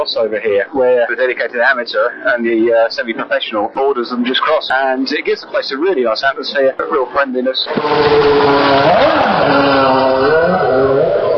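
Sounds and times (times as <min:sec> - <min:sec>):
speech: 0:00.0 - 0:11.0
modern Formula One cars racing past: 0:07.7 - 0:11.3.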